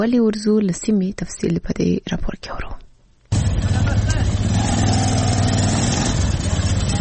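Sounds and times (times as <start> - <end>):
speech: 0.0 - 2.8
Zaranj motorcycle rickshaw engine running in Kandahar: 3.3 - 6.9.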